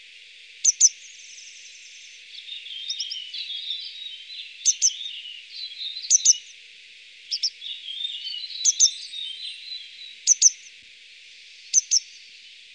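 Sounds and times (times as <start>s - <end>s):
faint hiss: 0.0s - 12.7s
grey wagtail sharp high double-note calls: 0.6s - 1.6s, 2.3s - 6.5s, 7.3s - 10.7s
soft twittering: 0.6s - 6.5s, 7.3s - 10.8s, 11.4s - 12.7s.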